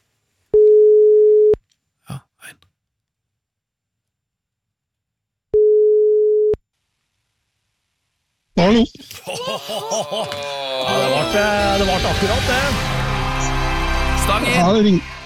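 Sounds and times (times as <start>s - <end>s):
telephone ringback tone: 0.6s - 1.6s, 5.6s - 6.6s
speech: 8.7s - 13.0s, 14.3s - 15.2s
laughter: 9.0s - 13.8s.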